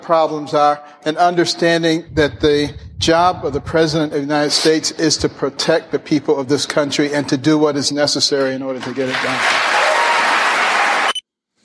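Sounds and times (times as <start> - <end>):
speech: 0.0 - 9.8
audience applause: 8.9 - 11.1.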